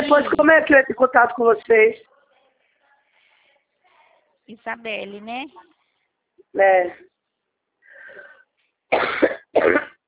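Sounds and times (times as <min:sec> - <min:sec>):
speech: 0:00.1 - 0:02.1, 0:04.5 - 0:05.8, 0:06.5 - 0:07.1, 0:08.9 - 0:10.0
raspy intake of breath: 0:07.8 - 0:08.5
person coughing harshly: 0:09.0 - 0:10.0.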